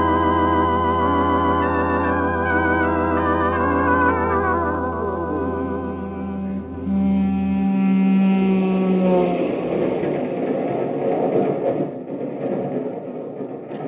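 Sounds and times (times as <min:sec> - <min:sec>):
steady tonal hum inside a moving passenger train: 0:00.0 - 0:10.5
broadband rumble and rattle of a moving passenger train carriage: 0:09.2 - 0:13.8.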